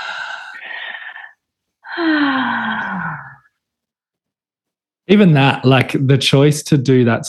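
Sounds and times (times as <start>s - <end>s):
deep noisy breath in and out with moaning tone: 0.0s - 3.5s
speech: 5.1s - 7.2s.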